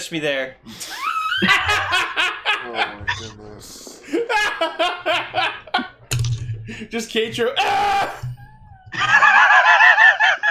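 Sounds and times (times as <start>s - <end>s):
speech: 0.0s - 5.6s, 6.7s - 8.3s
laughter: 0.8s - 6.0s, 8.9s - 10.5s
cartoon character screaming in a vehicle chase scene: 7.6s - 9.6s.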